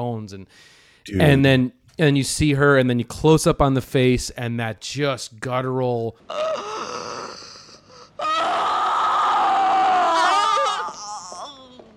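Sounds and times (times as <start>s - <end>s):
speech: 0.0s - 6.7s
electronically processed warbling scream with long echo: 8.2s - 11.6s.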